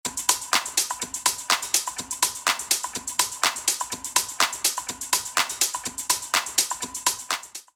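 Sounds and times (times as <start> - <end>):
top percussion loop in B minor: 0.1 - 7.7.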